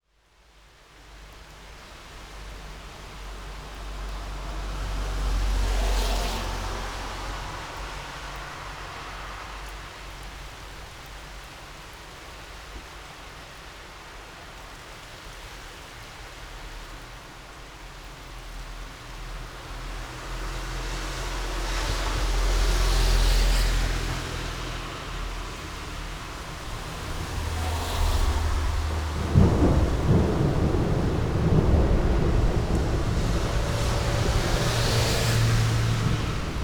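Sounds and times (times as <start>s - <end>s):
rain: 0.0s - 36.6s
cars: 3.1s - 12.0s, 18.4s - 36.6s
thunderstorm: 19.3s - 36.6s.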